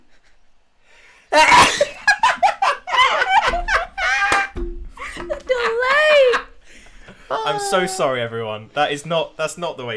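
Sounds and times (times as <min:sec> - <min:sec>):
soft breathing: 0:00.8 - 0:01.3
short breathy bursts like laughter: 0:01.3 - 0:05.2
loud sneeze: 0:01.4 - 0:01.9
speech: 0:07.5 - 0:09.9.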